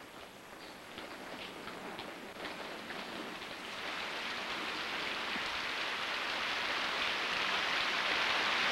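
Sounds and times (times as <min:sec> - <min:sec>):
heavy rain pouring: 0:01.1 - 0:08.6.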